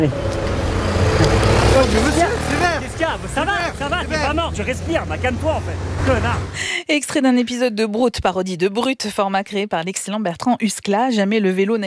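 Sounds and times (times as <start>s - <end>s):
speech: 0.0s - 0.3s, 3.0s - 11.8s
road traffic rumble: 0.0s - 6.8s.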